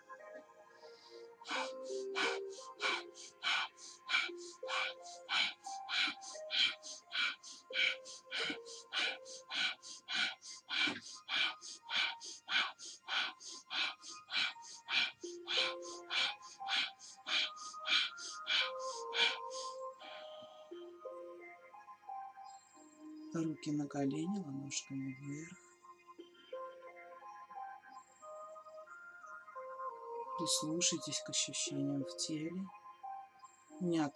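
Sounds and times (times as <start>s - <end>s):
forceful rhythmic breathing in a guided breathing exercise: 0.0s - 20.6s
soft sustained music: 0.0s - 34.1s
speech: 23.4s - 25.6s, 30.5s - 32.8s, 33.8s - 34.1s.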